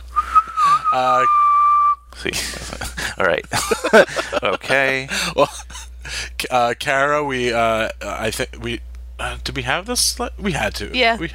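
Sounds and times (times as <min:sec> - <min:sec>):
person whistling one steady high tone: 0:00.1 - 0:02.0
speech: 0:00.9 - 0:01.4, 0:02.2 - 0:05.6, 0:06.4 - 0:11.3
laughter: 0:02.2 - 0:05.9.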